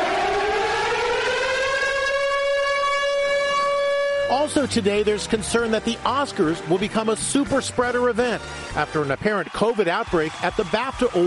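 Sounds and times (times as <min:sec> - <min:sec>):
air raid siren wailing in Ukraine: 0:00.0 - 0:04.7
speech: 0:04.4 - 0:11.2.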